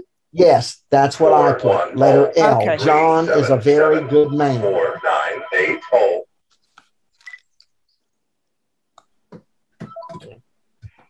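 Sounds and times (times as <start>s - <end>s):
speech: 0.3s - 6.2s
landline telephone ringing in electronic bursts: 2.6s - 6.2s.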